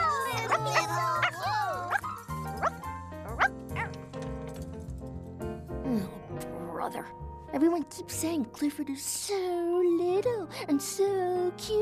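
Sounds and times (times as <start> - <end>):
music: 0.0 - 11.7
puppy barking: 0.3 - 2.0
speech: 6.9 - 11.7.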